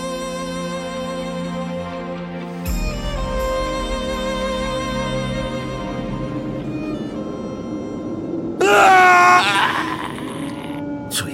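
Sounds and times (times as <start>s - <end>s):
low sustained drone: 0.0s - 11.3s
person screaming in terror across the moor: 8.6s - 10.8s.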